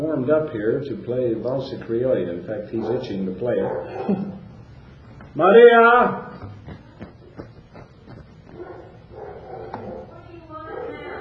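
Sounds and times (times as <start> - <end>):
speech: 0.0 - 4.4, 5.3 - 6.8
room noise: 0.0 - 11.1
dog barking in quick sharp bursts: 2.7 - 4.4, 8.5 - 11.1.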